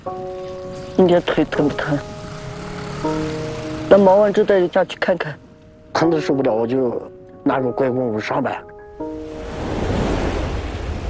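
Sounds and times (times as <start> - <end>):
speech: 0.0 - 2.2, 3.0 - 5.4, 6.0 - 8.7
wind gusting outdoors beside a large lake: 0.0 - 5.9, 9.0 - 11.0.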